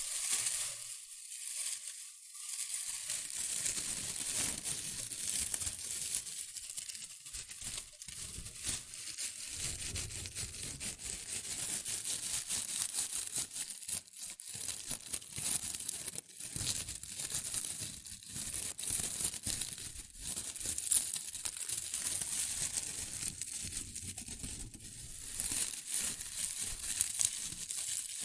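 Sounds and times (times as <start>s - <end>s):
shredded tissue and packing peanuts rustling and crinkling: 0.0s - 28.2s.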